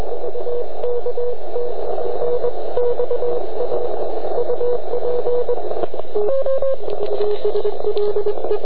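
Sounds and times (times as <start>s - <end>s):
CW morse code tones through a transceiver filter: 0.1s - 8.6s.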